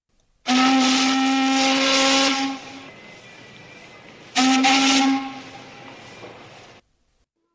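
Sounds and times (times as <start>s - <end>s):
warship steam whistle blasts at full force: 0.5s - 6.8s.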